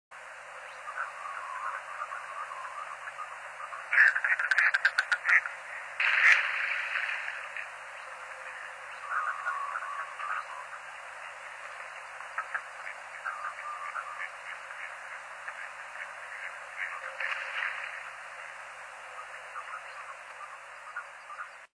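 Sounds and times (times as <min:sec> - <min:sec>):
Mergus merganser calling at sea off Sakhalin and the Kurils: 0:00.4 - 0:21.7.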